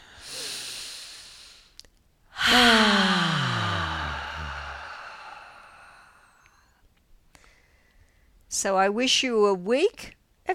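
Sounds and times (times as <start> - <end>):
deep breath in: 0.0 - 6.8
long loud voiced sigh: 2.3 - 6.6
speech: 8.6 - 10.5.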